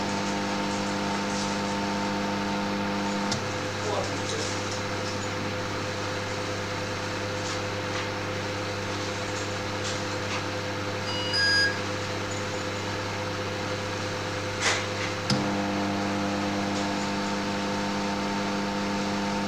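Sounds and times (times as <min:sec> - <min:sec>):
microwave oven humming, cycling on and off: 0:00.0 - 0:19.4
brief high beep-like chirp: 0:11.0 - 0:12.8.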